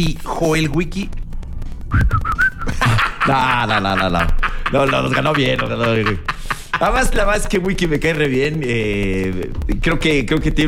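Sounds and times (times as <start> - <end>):
speech: 0.0 - 1.2, 1.9 - 10.6
person whistling a short wavering tune: 1.9 - 2.7
laughter: 2.5 - 7.9.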